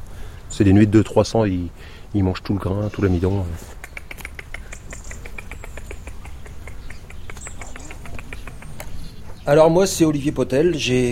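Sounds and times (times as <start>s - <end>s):
European robin calling: 0.0s - 11.0s
speech: 0.6s - 3.8s, 9.5s - 11.0s.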